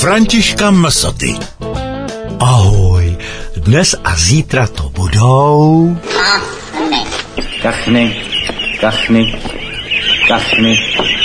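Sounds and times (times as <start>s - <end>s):
speech: 0.0s - 1.6s, 2.4s - 9.6s, 10.3s - 11.2s
several ducks quacking: 6.1s - 11.2s.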